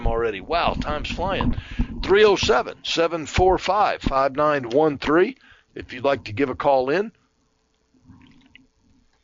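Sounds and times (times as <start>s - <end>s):
speech: 0.3s - 7.2s
person gulping water from a bottle: 8.0s - 9.2s.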